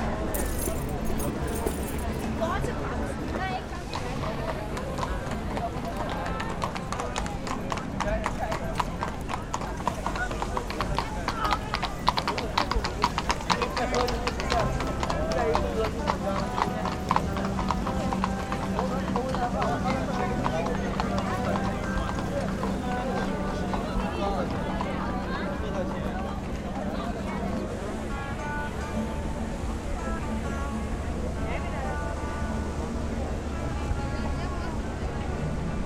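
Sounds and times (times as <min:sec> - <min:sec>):
constant overlapping chatter from many people in a crowded cobblestone square: 0:00.0 - 0:35.8
hooves clip-clopping across cobblestones: 0:00.4 - 0:02.2.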